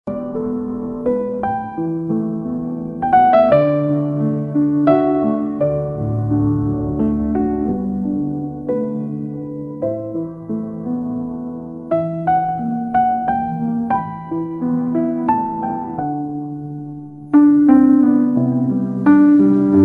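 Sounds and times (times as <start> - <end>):
romantic and emotional piano music: 0.0 - 19.8.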